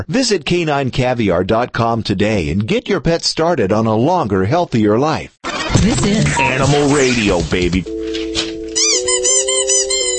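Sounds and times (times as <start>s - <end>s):
speech: 0.0s - 8.0s
two squeaky dog toys honking and squealing: 5.4s - 7.1s, 8.7s - 10.1s.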